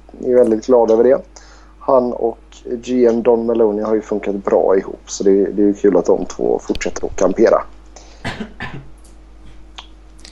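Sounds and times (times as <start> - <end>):
low steady hum: 0.0 - 10.3
speech: 0.1 - 7.8, 8.4 - 8.9
man coughing: 8.2 - 8.9.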